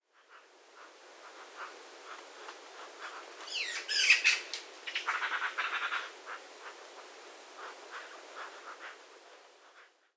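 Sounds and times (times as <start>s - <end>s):
steady background hiss: 0.0s - 10.1s
Eurasian magpie Pica pica chattering: 3.5s - 5.8s.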